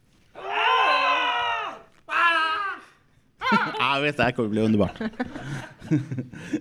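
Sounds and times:
small group screaming hysterically: 0:00.4 - 0:04.0
laughter: 0:03.4 - 0:06.5
speech: 0:03.5 - 0:06.5.

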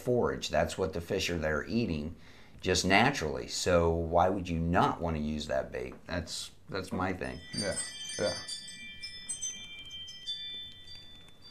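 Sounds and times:
speech: 0:00.0 - 0:08.6
dinner bell ringing: 0:07.2 - 0:11.4.

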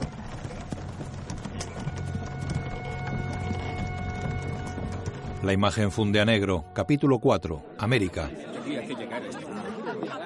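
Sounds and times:
ox hooves clip-clopping: 0:00.0 - 0:06.5
ox-drawn cart carrying furniture rolling and creaking: 0:00.0 - 0:06.8
speech: 0:05.4 - 0:10.2
laughter: 0:08.1 - 0:10.2.

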